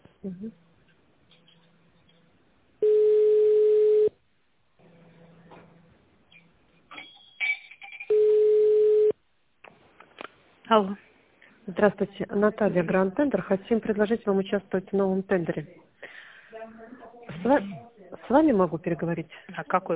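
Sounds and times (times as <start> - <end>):
speech: 0.2 - 0.7, 10.8 - 11.0, 11.7 - 15.9, 17.4 - 19.9
telephone line tone during a call transfer: 2.8 - 4.2, 8.1 - 9.2.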